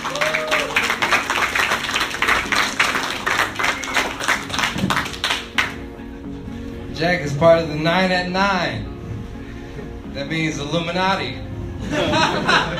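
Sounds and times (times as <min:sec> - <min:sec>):
comedy-show audience applauding: 0:00.0 - 0:05.9
speech: 0:07.0 - 0:08.9, 0:10.2 - 0:12.7
laughter: 0:11.8 - 0:12.7.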